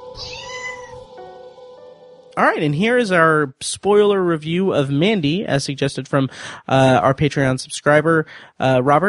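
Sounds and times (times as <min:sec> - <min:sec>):
cat meowing with a drawn-out wavering cry: 0:00.0 - 0:01.2
speech: 0:02.4 - 0:09.0.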